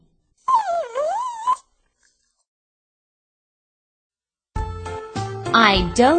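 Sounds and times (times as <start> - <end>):
dog whining: 0.4 - 1.8
speech: 5.6 - 6.1.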